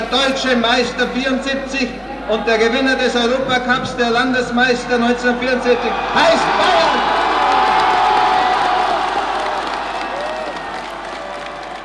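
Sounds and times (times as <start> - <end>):
speech: 0.1 - 7.2
football fans cheering: 5.1 - 11.8
football fans applauding: 6.2 - 11.8
football fans whooping: 6.8 - 11.8.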